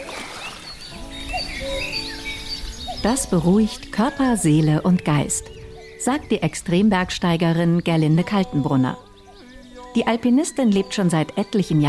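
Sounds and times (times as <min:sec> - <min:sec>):
gently lapping waves on the still Attersee lake at Steinbach: 0:00.0 - 0:07.6
small birds chirping and trilling by the Attersee lake at Steinbach: 0:00.0 - 0:11.8
speech: 0:03.0 - 0:09.1, 0:10.0 - 0:11.8.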